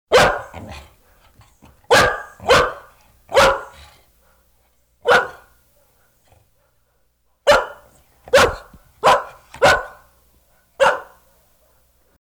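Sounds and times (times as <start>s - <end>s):
big dog barking: 0.1s - 4.1s, 5.0s - 5.6s, 7.5s - 11.4s.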